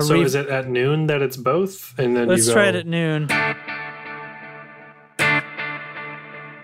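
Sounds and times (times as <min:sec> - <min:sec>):
speech: 0:00.0 - 0:03.7
electric guitar through an effects pedal with reverb and delay: 0:02.1 - 0:06.6.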